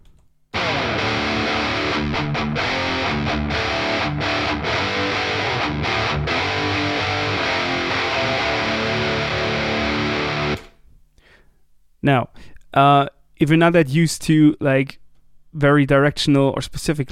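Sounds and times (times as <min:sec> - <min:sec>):
distorted electric guitar riff with subtle room reverb: 0:00.6 - 0:10.6
speech: 0:12.0 - 0:17.1.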